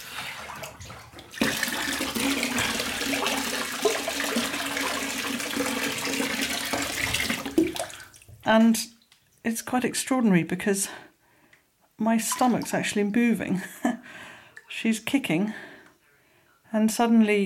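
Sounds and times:
hot water gushing from a tap into a bathtub: 0.0s - 9.2s, 12.2s - 13.4s
speech: 8.5s - 8.9s, 9.5s - 11.1s, 12.0s - 14.0s, 14.8s - 15.7s, 16.7s - 17.4s.

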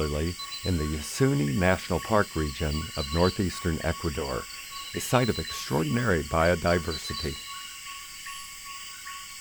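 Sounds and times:
speech: 0.0s - 7.5s
chirps: 0.0s - 9.3s
insects and frogs calling at rainforest dusk: 0.0s - 9.3s.

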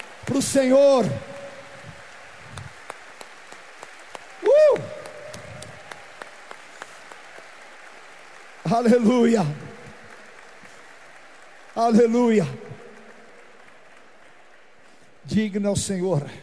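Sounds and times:
large crowd applauding: 0.0s - 16.4s
speech: 0.3s - 1.4s, 8.7s - 9.6s, 11.8s - 12.6s, 15.4s - 16.4s
person whooping: 4.4s - 5.8s.

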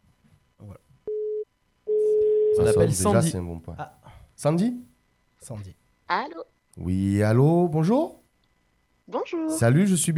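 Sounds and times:
telephone line tone while a number is dialled: 1.1s - 2.8s
speech: 2.6s - 8.2s, 9.3s - 10.1s.

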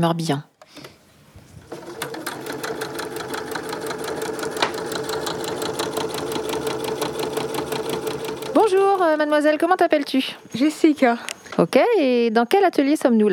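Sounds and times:
speech: 0.0s - 0.9s, 8.6s - 13.3s
sewing machine running: 1.6s - 10.2s.

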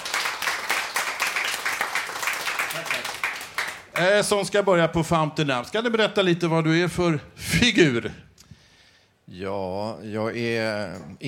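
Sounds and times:
room full of people applauding: 0.0s - 4.3s
speech: 4.0s - 8.3s, 9.3s - 11.2s.

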